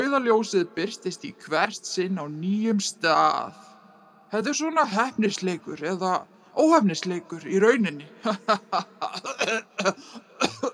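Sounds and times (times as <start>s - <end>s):
speech: 0.1s - 3.7s, 4.3s - 10.7s
harsh coughing from someone with a cold: 9.1s - 10.7s.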